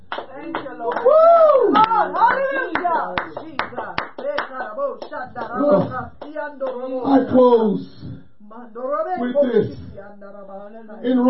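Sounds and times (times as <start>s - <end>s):
congregation clapping hands during a church service: 0.0s - 6.8s
speech: 0.4s - 1.2s, 5.1s - 8.0s, 8.7s - 11.2s.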